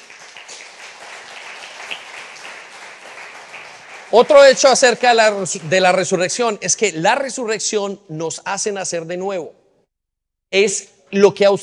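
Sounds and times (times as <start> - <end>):
crowd applauding: 0.0 - 6.4
speech: 4.1 - 9.6, 10.5 - 11.6.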